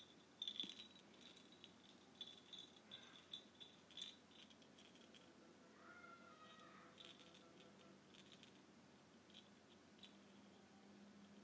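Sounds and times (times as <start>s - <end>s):
tiny bell jingling: 0.0s - 5.3s, 6.4s - 8.7s, 9.3s - 10.6s
faint noise: 0.0s - 11.4s.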